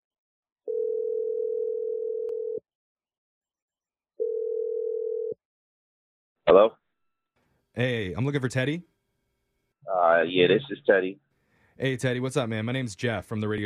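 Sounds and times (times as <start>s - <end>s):
telephone ringing tone: 0.7s - 2.6s, 4.2s - 5.4s
speech: 7.8s - 9.0s, 10.2s - 11.2s, 11.8s - 13.6s.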